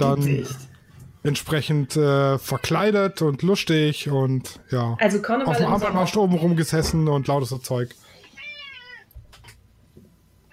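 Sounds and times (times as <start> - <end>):
speech: 0.0 - 8.1
cat meowing: 8.2 - 9.2.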